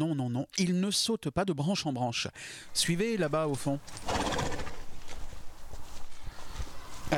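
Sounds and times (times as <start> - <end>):
speech: 0.0 - 4.6
steady outdoor background: 0.0 - 7.1
horse hoof clops and shuffling: 3.1 - 7.1.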